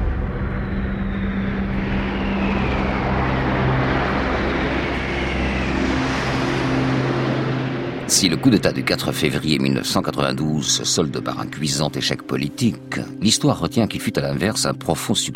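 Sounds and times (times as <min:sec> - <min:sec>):
low-flying jet aircraft passing overhead: 0:00.2 - 0:13.2
speech: 0:08.2 - 0:15.3.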